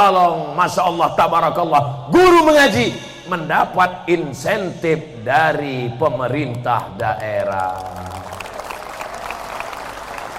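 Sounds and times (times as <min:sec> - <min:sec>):
speech: 0:00.0 - 0:08.3
audience applause at a political talk: 0:07.5 - 0:10.3.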